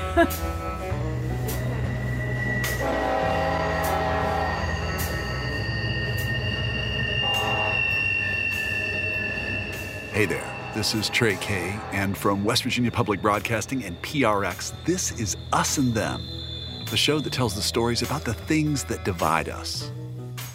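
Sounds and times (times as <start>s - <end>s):
speech: 0.2s - 0.6s, 10.2s - 20.0s
train rumbling past in Kermit, West Virginia: 0.5s - 20.3s
sharp metallic whines from train: 1.9s - 19.6s.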